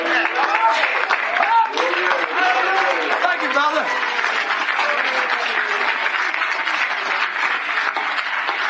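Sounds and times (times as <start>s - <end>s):
crowd of people clapping their hands: 0.0s - 8.6s.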